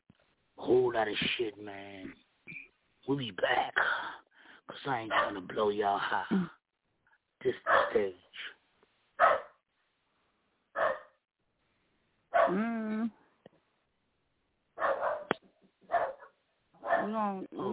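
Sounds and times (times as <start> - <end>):
speech: 0.7 - 6.6, 7.4 - 8.6, 17.0 - 17.7
dog barking: 5.1 - 5.4, 7.6 - 8.0, 9.2 - 9.6, 10.8 - 11.2, 12.3 - 12.6, 14.8 - 15.3, 15.9 - 17.2
dog yelping: 9.2 - 9.6, 10.8 - 11.1, 12.3 - 12.6, 14.8 - 15.3, 15.9 - 17.1.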